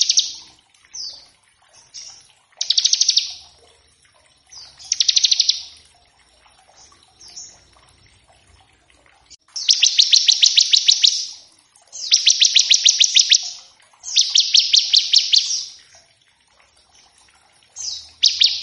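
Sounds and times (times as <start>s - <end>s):
bar-winged prinia singing descending slurs and buzzy rapid trills: 0.0s - 3.4s, 4.5s - 5.8s, 9.6s - 15.8s, 17.8s - 18.6s.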